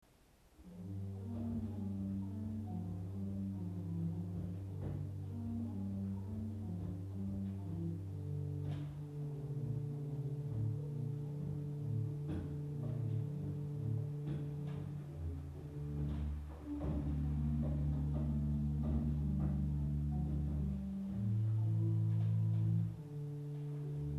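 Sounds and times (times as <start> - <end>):
Octavb 8 organ stop: 0.6 - 24.1.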